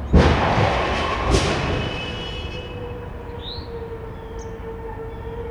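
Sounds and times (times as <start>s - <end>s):
crash: 0.1s - 5.3s.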